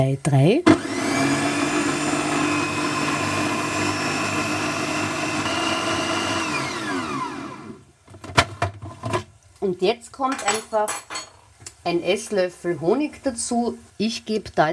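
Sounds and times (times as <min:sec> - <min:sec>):
speech: 0:00.0 - 0:01.4, 0:09.6 - 0:11.2, 0:11.8 - 0:14.7
food processor blending cooked parsnip with fruit flesh: 0:00.7 - 0:07.8.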